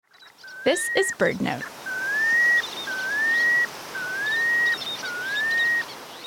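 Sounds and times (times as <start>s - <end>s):
plover calls: 0.2s - 6.2s
soft background hiss: 0.4s - 6.2s
speech: 0.6s - 1.8s.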